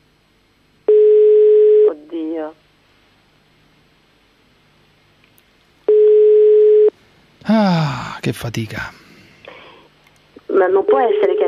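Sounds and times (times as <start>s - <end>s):
telephone busy signal on an unanswered call: 0.9s - 1.9s, 5.9s - 6.9s
speech: 7.6s - 9.0s, 10.6s - 11.4s.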